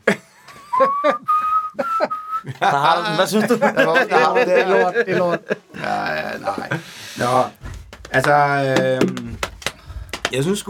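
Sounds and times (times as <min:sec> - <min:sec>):
laughter: 0:00.0 - 0:06.9
person whistling a tune: 0:00.6 - 0:02.5
speech: 0:00.8 - 0:01.3, 0:02.6 - 0:05.6, 0:06.2 - 0:09.4, 0:10.3 - 0:10.6.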